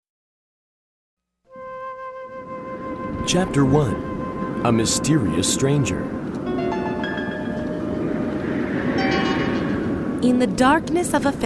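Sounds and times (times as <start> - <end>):
faint metallic whining tones of a train: 1.5 - 10.7
brief higher train squeal: 2.3 - 10.2
train running with a low roar: 2.8 - 11.4
speech: 3.2 - 6.2, 10.2 - 11.4.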